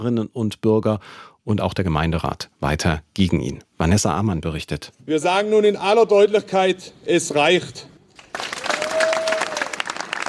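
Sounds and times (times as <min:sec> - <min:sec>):
speech: 0:00.0 - 0:07.9
crowd applauding at a protest rally in front of a town hall: 0:08.2 - 0:10.2.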